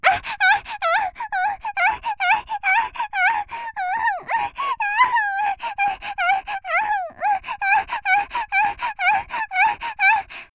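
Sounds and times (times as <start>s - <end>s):
energetic girl panting heavily: 0.0s - 10.5s.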